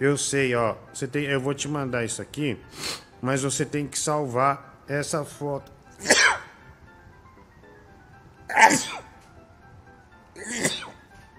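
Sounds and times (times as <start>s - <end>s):
speech: 0.0s - 6.2s
person sneezing: 6.0s - 6.6s, 8.5s - 9.2s, 10.4s - 11.0s.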